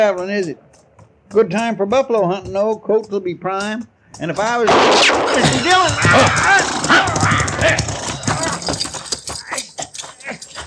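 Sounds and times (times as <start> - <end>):
speech: 0.0 - 7.9
hoof-like clatter: 0.0 - 10.6
gunfire: 4.7 - 6.8
horse squealing and whinnying in distress as it is shot: 5.0 - 10.6
people shouting: 5.3 - 8.8.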